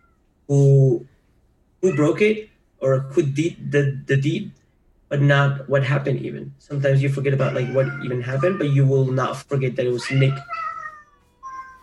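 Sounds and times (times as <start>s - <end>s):
speech: 0.5s - 1.1s, 1.8s - 10.6s
cat meowing: 1.8s - 3.1s, 7.3s - 9.2s, 9.9s - 11.8s.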